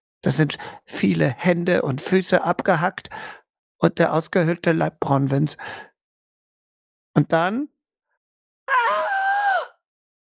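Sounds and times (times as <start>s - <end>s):
speech: 0.2s - 5.9s, 7.2s - 7.7s
person screaming: 8.7s - 9.8s.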